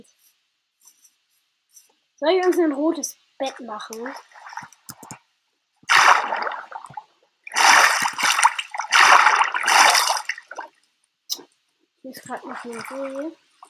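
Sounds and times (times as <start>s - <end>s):
speech: 2.2s - 4.4s, 12.2s - 13.5s
backstroke swimming splashes in a video game: 5.9s - 10.8s, 12.2s - 13.6s
water drips: 5.9s - 11.6s, 12.2s - 13.6s.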